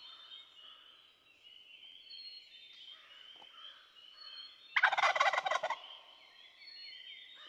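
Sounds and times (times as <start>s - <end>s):
chorus of songbirds warbling and chirping: 0.0s - 7.4s
wild turkey throaty rolling gobble: 4.8s - 5.8s.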